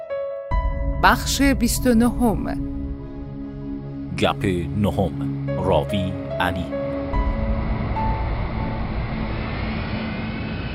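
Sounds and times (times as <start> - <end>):
speech: 1.0 - 2.7, 4.2 - 6.8
airplane engine roar during landing: 4.1 - 10.7.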